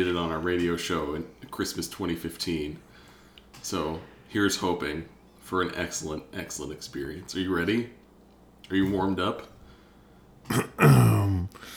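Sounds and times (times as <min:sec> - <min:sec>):
speech: 0:00.0 - 0:02.9, 0:03.6 - 0:08.0, 0:08.6 - 0:09.5, 0:10.5 - 0:11.0
person clearing throat: 0:10.5 - 0:11.6.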